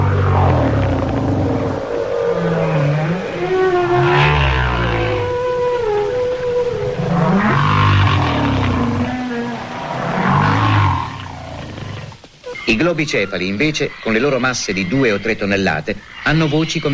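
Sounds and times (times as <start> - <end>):
humpback whale low-frequency song: 0.0 - 12.7
speech: 12.8 - 16.9.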